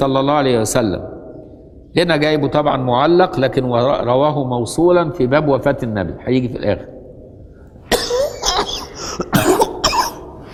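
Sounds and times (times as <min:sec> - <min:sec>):
speech: 0:00.0 - 0:01.1, 0:02.0 - 0:07.0
harsh coughs from person with a cold: 0:07.9 - 0:10.4.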